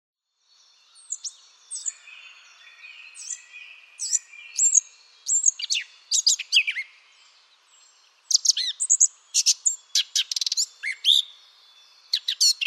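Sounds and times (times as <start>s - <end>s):
Eurasian blackcap singing: 0.3s - 12.6s.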